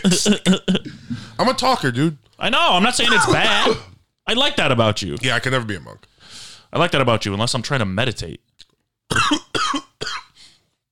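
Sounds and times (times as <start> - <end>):
person coughing: 0.0 - 1.0, 3.1 - 4.0, 9.1 - 10.4
speech: 0.0 - 8.5, 9.1 - 9.4.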